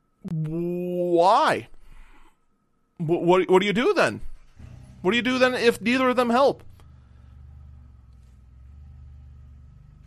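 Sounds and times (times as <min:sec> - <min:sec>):
speech: 0:01.2 - 0:01.8, 0:03.0 - 0:04.3, 0:05.0 - 0:06.7
car engine revving heard through an open studio window: 0:04.4 - 0:10.0.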